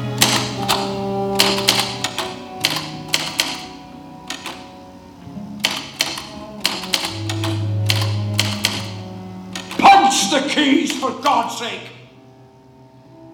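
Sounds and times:
crisp typewriter keystrokes clattering: 0.2s - 4.7s, 5.6s - 10.0s
speech: 11.3s - 11.9s.

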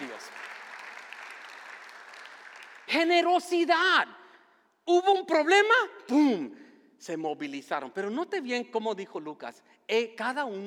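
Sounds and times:
congregation applauding at a church service: 0.0s - 3.3s
speech: 2.9s - 4.2s, 4.8s - 10.6s.

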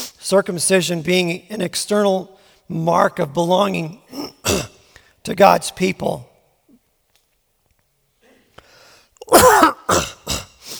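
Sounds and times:
speech: 0.3s - 6.3s
person coughing: 4.2s - 4.7s, 9.2s - 10.6s.

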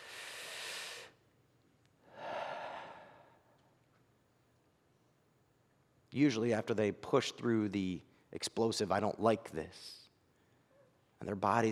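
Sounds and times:
slow deep soft breathing while holding a child: 0.0s - 1.2s, 2.0s - 3.6s
speech: 6.1s - 10.0s, 11.2s - 11.7s.

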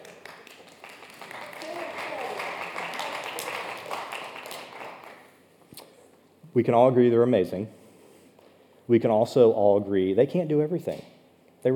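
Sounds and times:
church audience applause for church staff: 0.0s - 5.2s
speech: 6.6s - 7.8s, 8.9s - 11.7s.

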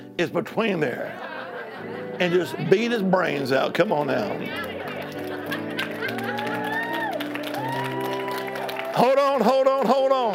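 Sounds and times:
organ-like music with shifting chords: 0.0s - 10.3s
speech: 0.2s - 4.8s, 9.0s - 10.3s
laughter: 1.0s - 6.9s
church audience clapping in rhythm: 3.7s - 10.3s.

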